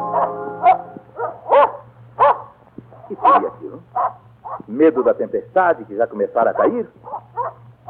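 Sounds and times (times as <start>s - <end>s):
low steady hum: 0.0s - 7.8s
dog barking furiously: 0.1s - 4.7s, 6.5s - 7.8s
speech: 4.8s - 7.1s.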